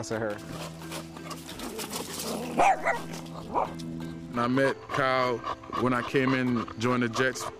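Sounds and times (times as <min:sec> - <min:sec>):
speech: 0:00.0 - 0:00.9, 0:02.6 - 0:07.5
small male dog barking and whimpering: 0:02.3 - 0:03.8.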